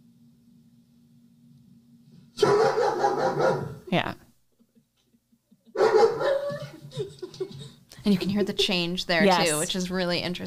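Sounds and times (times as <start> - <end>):
dog barking: 2.4 - 3.9, 5.8 - 6.7
speech: 3.4 - 4.2, 8.1 - 10.4
laughter: 4.6 - 9.7.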